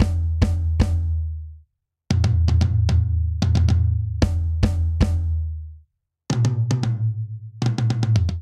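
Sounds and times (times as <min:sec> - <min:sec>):
polyrhythmic dance drum breakdown at 114 bpm: 0:00.0 - 0:01.4, 0:02.1 - 0:05.6, 0:06.3 - 0:08.4.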